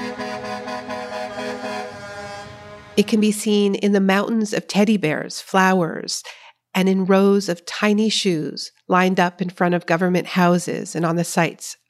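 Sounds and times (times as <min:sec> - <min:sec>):
several vehicle horns from a passing convoy blaring: 0:00.0 - 0:03.2
speech: 0:03.0 - 0:11.8.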